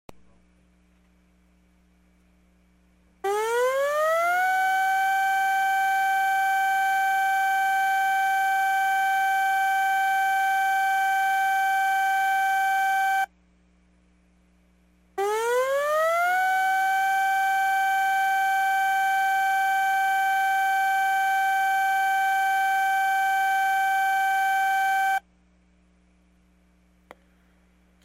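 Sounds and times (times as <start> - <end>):
tsunami advisory siren: 3.2 - 13.3, 15.2 - 25.2.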